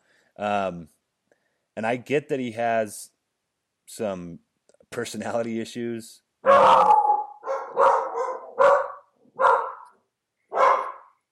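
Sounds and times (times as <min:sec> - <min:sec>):
speech: 0:00.4 - 0:01.0, 0:01.8 - 0:03.2, 0:03.9 - 0:07.0
dogs barking: 0:06.4 - 0:11.2.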